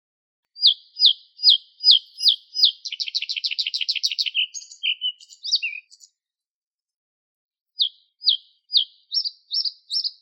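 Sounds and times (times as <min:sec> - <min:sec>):
Bluethroat Luscinia svecica singing downslurred notes and rattling trill: 0:00.5 - 0:06.2, 0:07.8 - 0:10.2.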